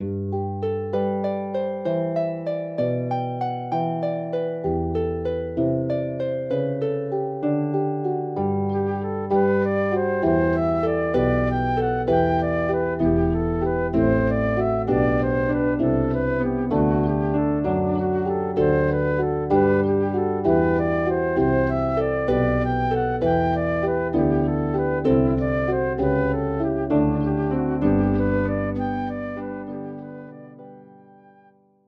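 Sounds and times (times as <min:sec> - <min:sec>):
harp: 0:00.0 - 0:31.5
flute: 0:08.6 - 0:31.5.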